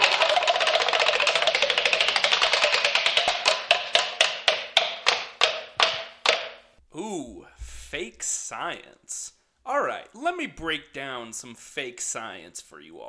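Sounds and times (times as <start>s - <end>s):
prize wheel spinning and ticking: 0.0s - 5.8s
speech: 7.0s - 13.0s.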